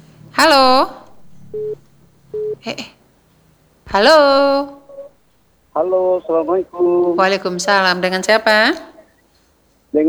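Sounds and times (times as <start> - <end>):
speech: 0.4 - 1.8, 2.5 - 3.0, 3.9 - 4.8, 5.8 - 8.9
telephone busy tone after a dropped call: 1.1 - 2.6, 4.4 - 5.2.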